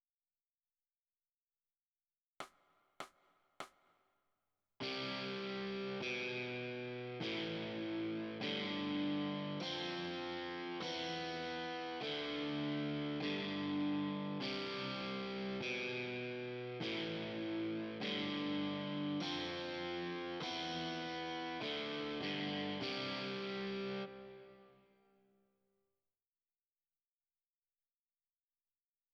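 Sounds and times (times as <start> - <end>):
overdrive guitar: 4.8 - 25.0.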